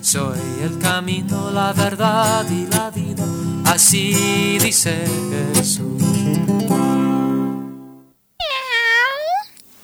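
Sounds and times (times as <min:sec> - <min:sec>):
speech: 0:00.1 - 0:07.3
kitten meowing: 0:08.4 - 0:09.8.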